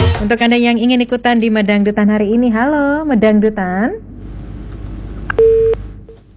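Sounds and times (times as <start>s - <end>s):
speech: 0.2s - 4.1s
short telephone line beep after a dropped call: 5.4s - 5.8s.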